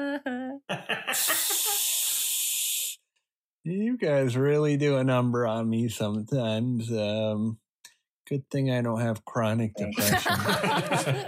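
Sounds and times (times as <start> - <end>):
laughter: 0.7 - 2.0, 10.0 - 11.2
voice imitating sizzling of corroding wires inside computers: 1.0 - 3.0
speech: 1.1 - 1.4, 3.6 - 7.6, 8.3 - 11.2.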